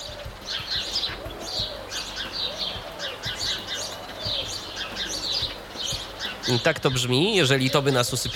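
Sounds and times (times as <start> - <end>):
soft cooing call: 0.0 - 6.4
small songbirds chirping and tweeting: 0.0 - 8.3
speech: 6.5 - 8.3.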